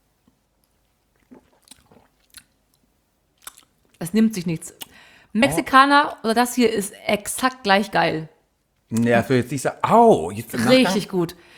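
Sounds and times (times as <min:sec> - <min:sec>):
faint hiss: 0:00.0 - 0:11.5
person taking small sips from a drink: 0:00.8 - 0:02.6
speech: 0:04.0 - 0:08.3, 0:08.9 - 0:11.5.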